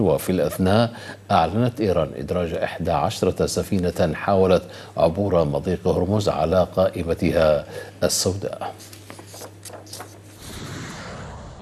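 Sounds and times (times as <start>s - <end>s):
speech: 0.0s - 9.0s
explosions from strikes on Iranian military sites near the Strait of Hormuz: 10.4s - 11.6s.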